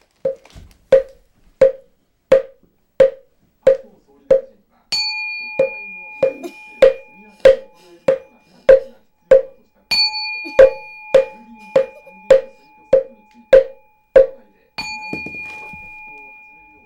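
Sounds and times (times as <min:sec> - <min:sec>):
Buddhist altar: 0:04.9 - 0:16.8.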